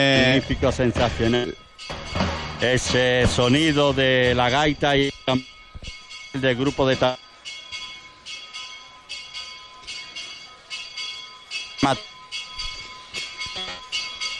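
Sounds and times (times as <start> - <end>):
speech: 0.0 - 2.0, 2.6 - 7.2, 11.9 - 12.1
small hermitage bell ringing during a country pilgrimage festival: 0.0 - 14.3
sharp knocks: 0.9 - 4.6.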